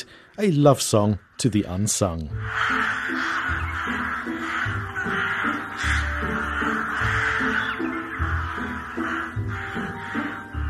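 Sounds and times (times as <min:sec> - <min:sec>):
speech: 0:00.4 - 0:03.3
crows cawing: 0:02.3 - 0:10.6.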